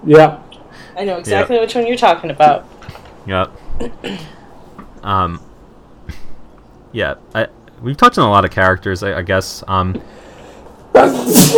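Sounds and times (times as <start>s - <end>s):
speech: 0.1s - 0.4s, 1.0s - 4.4s, 5.0s - 5.5s, 6.9s - 10.2s, 11.0s - 11.5s
sneeze: 10.9s - 11.5s.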